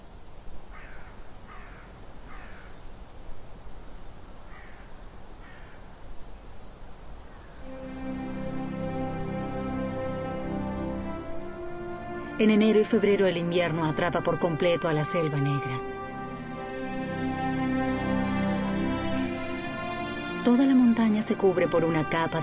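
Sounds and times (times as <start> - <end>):
steady hiss: 0.0 - 22.4
crows cawing in snowy winter in the Black Forest: 0.7 - 2.8, 4.5 - 5.9
sustained harmonic tone: 7.6 - 22.4
speech: 12.4 - 15.9, 20.4 - 22.4.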